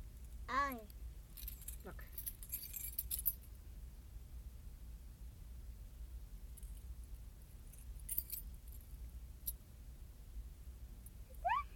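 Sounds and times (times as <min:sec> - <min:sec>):
low rumble: 0:00.0 - 0:11.7
speech: 0:00.5 - 0:01.0, 0:01.8 - 0:02.2
metal keys jingling as they are taken apart: 0:01.4 - 0:03.4, 0:07.7 - 0:09.0.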